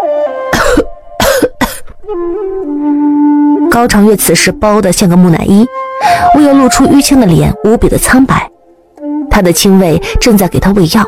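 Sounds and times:
harsh forceful coughing: 0:00.6 - 0:02.0
steady sustained musical tone: 0:00.9 - 0:09.3
speech: 0:03.7 - 0:08.5, 0:09.4 - 0:11.0.

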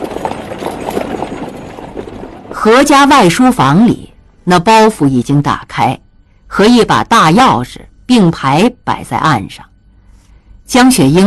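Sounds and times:
hooves of a horse pulling a carriage galloping: 0:00.0 - 0:03.7
speech: 0:02.6 - 0:09.7, 0:10.7 - 0:11.2.

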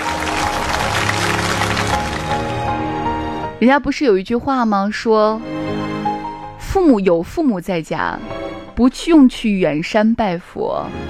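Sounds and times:
crowd applauding: 0:00.0 - 0:03.2
speech: 0:03.6 - 0:05.8, 0:06.8 - 0:11.0.

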